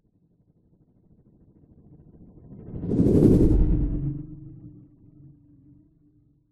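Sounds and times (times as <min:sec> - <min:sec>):
science fiction spacecraft flying by fast: 0:02.8 - 0:04.4.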